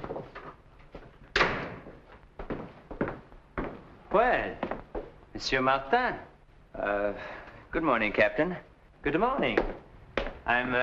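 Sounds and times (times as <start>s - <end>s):
front door of a villa banging shut: 1.3s - 2.0s
speech: 4.2s - 4.7s, 5.4s - 9.8s, 10.5s - 10.8s.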